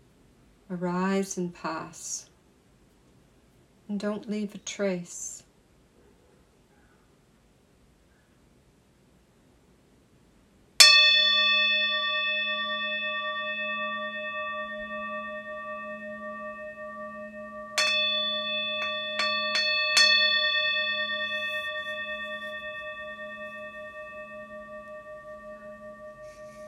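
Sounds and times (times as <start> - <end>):
speech: 0.7 - 2.3, 3.9 - 5.4
bells ringing: 10.8 - 26.6.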